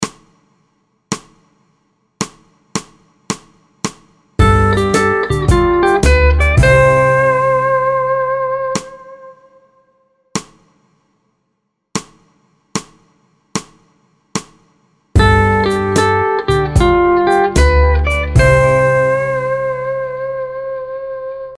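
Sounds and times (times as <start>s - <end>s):
musical vamp in the key of C in 4 4 time: 4.4s - 9.2s, 15.2s - 21.0s.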